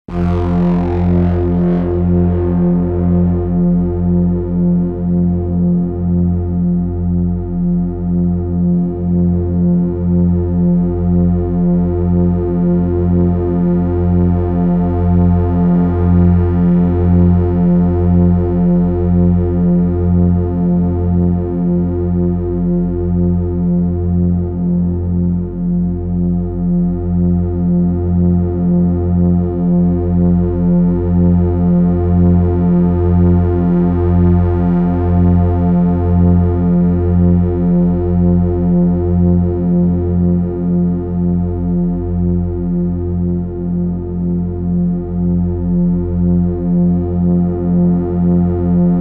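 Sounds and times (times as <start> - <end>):
Moog synthesizer drone: 0.1 - 48.9.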